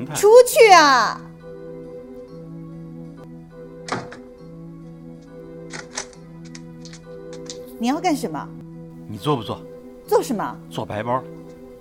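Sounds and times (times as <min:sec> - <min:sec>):
speech: 0:00.0 - 0:01.3, 0:07.8 - 0:11.4
door swinging shut with a low thunk: 0:03.8 - 0:04.3.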